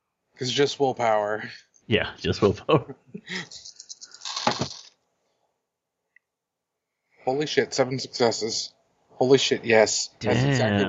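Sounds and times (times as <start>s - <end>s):
speech: 0.4s - 3.8s, 7.3s - 10.8s
dice rattling across a hard surface: 4.1s - 4.9s.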